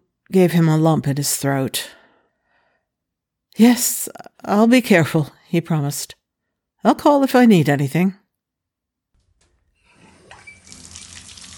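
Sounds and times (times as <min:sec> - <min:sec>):
speech: 0:00.3 - 0:02.0, 0:03.6 - 0:06.2, 0:06.8 - 0:08.2
shower water running: 0:09.9 - 0:11.5.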